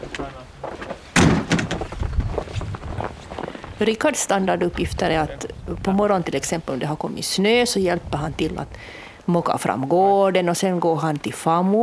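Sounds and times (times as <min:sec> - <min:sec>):
door slamming shut: 0:01.2 - 0:02.0
speech: 0:03.8 - 0:11.8.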